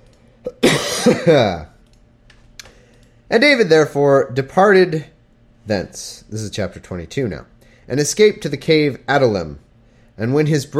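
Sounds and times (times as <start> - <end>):
person coughing from a tickle in the throat: 0.4 - 1.6
voiced throat-clearing: 0.4 - 1.6
speech: 0.4 - 1.7, 3.3 - 9.6, 10.2 - 10.7.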